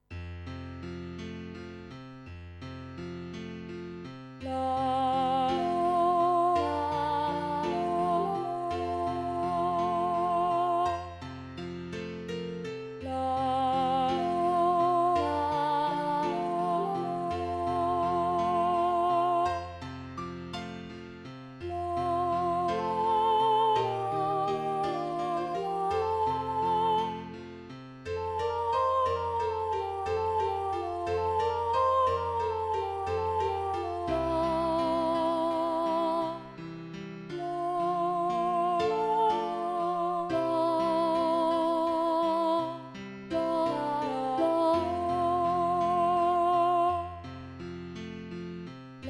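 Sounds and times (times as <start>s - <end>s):
ladies choir singing with alto: 4.5s - 11.1s, 13.2s - 19.6s, 21.6s - 27.4s, 28.2s - 36.4s, 37.4s - 47.1s.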